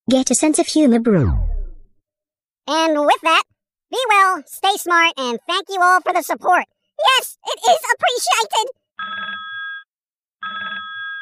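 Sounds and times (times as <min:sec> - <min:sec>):
speech: 0:00.1 - 0:01.5, 0:02.6 - 0:09.3
telephone ringing with an electronic trill: 0:09.0 - 0:11.2.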